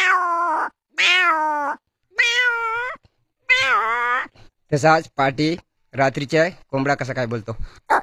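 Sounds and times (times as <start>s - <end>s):
hungry cat meowing: 0.0s - 4.4s
speech: 4.7s - 7.9s.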